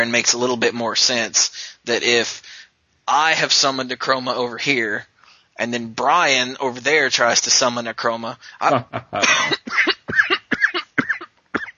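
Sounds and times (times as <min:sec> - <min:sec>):
speech: 0:00.0 - 0:02.5, 0:03.1 - 0:09.9
person acting out a coughing fit: 0:09.2 - 0:11.7.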